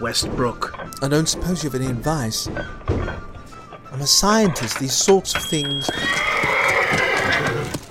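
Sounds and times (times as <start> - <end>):
speech: 0.0 - 3.3, 4.0 - 7.6
horse hooves clopping on a hard floor in a pub: 0.0 - 7.8
horse whinnying: 5.4 - 7.8.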